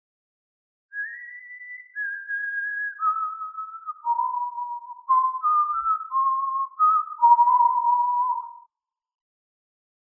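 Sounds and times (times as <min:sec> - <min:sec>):
person whistling a slow tune: 0:00.9 - 0:08.7.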